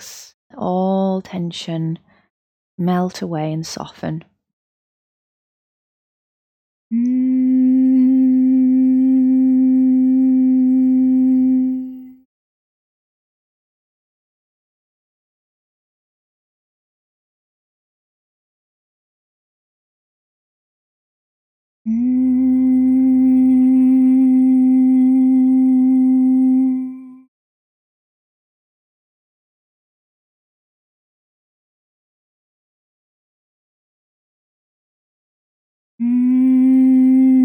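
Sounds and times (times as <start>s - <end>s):
speech: 0.6s - 2.1s, 2.8s - 4.3s
person doing humming bee breath breathing exercise with steady nasal hum: 6.9s - 12.0s, 21.9s - 27.2s, 36.0s - 37.4s.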